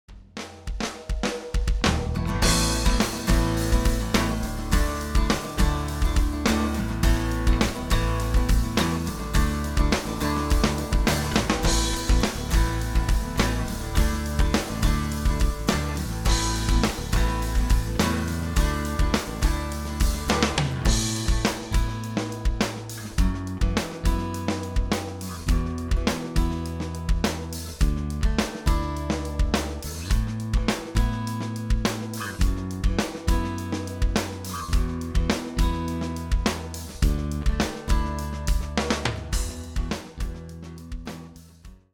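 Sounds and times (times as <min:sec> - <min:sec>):
rhythm section playing: 0:00.4 - 0:31.3, 0:32.4 - 0:41.1.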